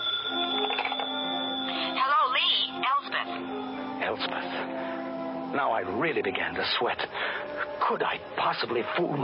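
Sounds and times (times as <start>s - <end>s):
telephone ringing with electronic warbling tone: 0.0s - 3.5s
speech: 4.1s - 4.8s, 5.6s - 9.2s.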